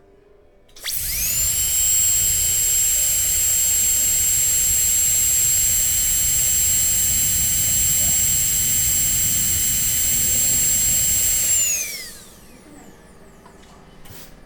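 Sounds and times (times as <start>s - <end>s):
dentist's turbine: 0.8s - 13.5s.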